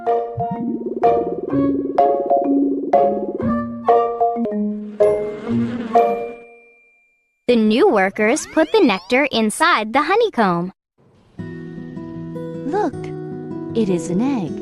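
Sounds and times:
speech: 0:00.4 - 0:02.3, 0:07.7 - 0:10.8, 0:12.8 - 0:13.1, 0:13.8 - 0:14.6
honey bees buzzing around the hive: 0:00.5 - 0:06.5
bright chiming musical notes: 0:04.2 - 0:07.4.

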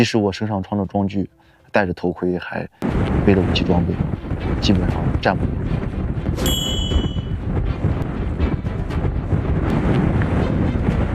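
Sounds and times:
speech: 0:00.0 - 0:06.5
strong wind howling around a mountain border marker: 0:02.8 - 0:11.1
brief metallic ring: 0:06.4 - 0:07.4.

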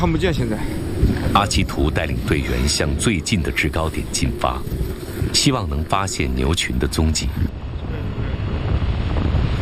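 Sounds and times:
speech: 0:00.0 - 0:07.5
strong wind rising over a snowfield: 0:00.0 - 0:09.6.

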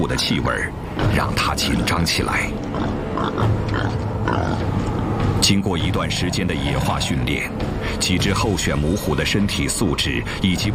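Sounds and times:
speech: 0:00.0 - 0:10.7
wild boar grunting as it steps off a truck: 0:02.6 - 0:05.1.

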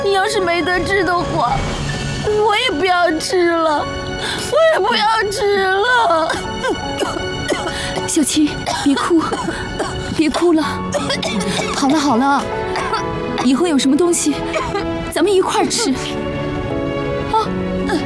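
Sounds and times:
speech: 0:00.2 - 0:07.1, 0:08.1 - 0:16.2
girl crying and whimpering: 0:03.7 - 0:13.5, 0:14.3 - 0:14.9, 0:17.3 - 0:18.0.

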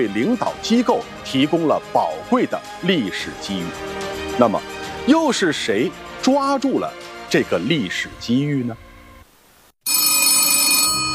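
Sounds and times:
speech: 0:00.0 - 0:08.9
telephone bell ringing late at night: 0:09.8 - 0:11.1.

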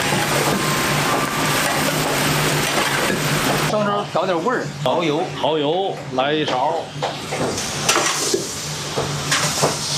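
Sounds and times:
meat sizzling in a hot wok with wine: 0:00.0 - 0:03.7, 0:07.5 - 0:09.9
speech: 0:04.2 - 0:07.9.

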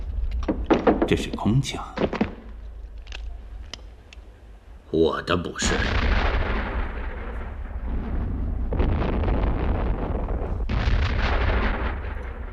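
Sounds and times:
speech: 0:00.9 - 0:02.3, 0:04.9 - 0:06.3
sustained artillery fire: 0:05.6 - 0:12.5.

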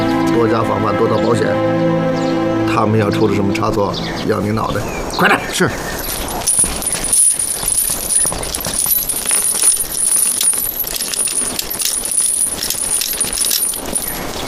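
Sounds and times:
speech: 0:00.4 - 0:06.1
metal keys and chains clinking while locking shackles: 0:06.0 - 0:14.4.

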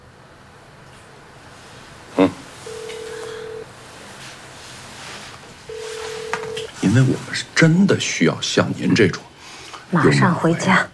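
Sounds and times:
telephone dialing tone of a call placed to a mobile phone: 0:02.7 - 0:03.6, 0:05.7 - 0:06.7
speech: 0:06.9 - 0:09.2, 0:09.9 - 0:10.9.

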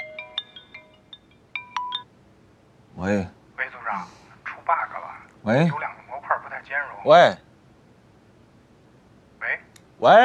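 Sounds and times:
phone ringtone with a bright electronic melody: 0:00.0 - 0:02.1
speech: 0:03.0 - 0:03.4, 0:05.5 - 0:05.9, 0:07.0 - 0:07.4, 0:10.0 - 0:10.2.

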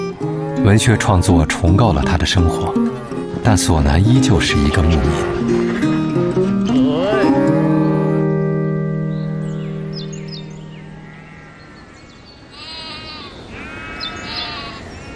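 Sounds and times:
flock of sheep bleating by a lake: 0:00.1 - 0:08.6, 0:12.5 - 0:15.1
speech: 0:00.7 - 0:02.9, 0:03.5 - 0:05.7.

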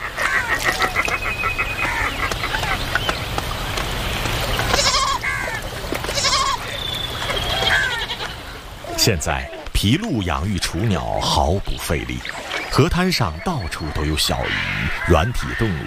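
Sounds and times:
constant rushing river noise: 0:00.0 - 0:15.8
wild goats bleating at a river: 0:04.7 - 0:05.4, 0:06.0 - 0:06.7, 0:07.6 - 0:09.7
speech: 0:09.0 - 0:15.8.

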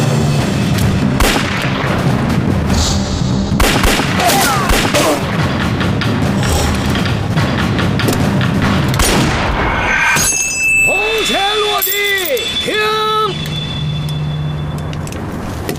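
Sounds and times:
dense continuous noisy background: 0:00.0 - 0:15.7
gunshots fired during a target-shooting contest: 0:01.2 - 0:02.2, 0:03.5 - 0:05.6, 0:06.4 - 0:09.8.

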